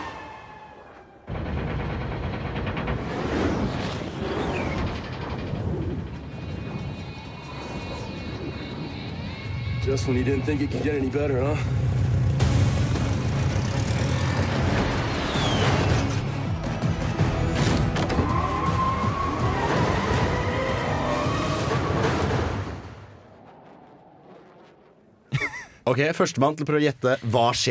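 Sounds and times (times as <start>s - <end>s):
engines roaring: 0.0s - 25.3s
rumbling impacts of cars hitting a road: 1.1s - 25.4s
wind roaring: 1.3s - 12.4s, 18.4s - 25.4s
speech: 9.9s - 12.0s, 26.0s - 27.6s.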